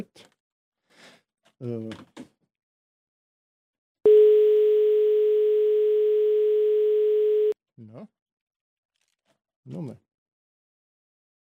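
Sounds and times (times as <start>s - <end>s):
speech: 1.6s - 2.3s, 9.6s - 10.0s
steady telephone tone of an incoming call: 4.1s - 7.6s.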